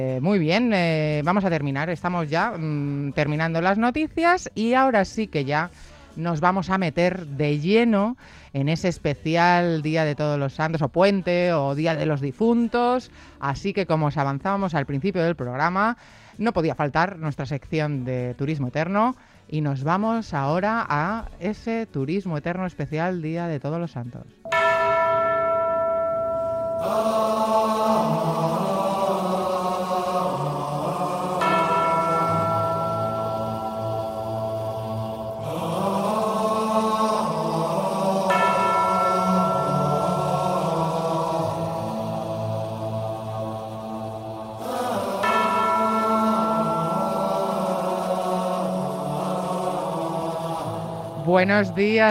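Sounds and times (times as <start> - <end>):
speech: 0.0 - 24.6, 26.8 - 28.3, 51.4 - 52.0
church bells ringing: 24.5 - 52.0.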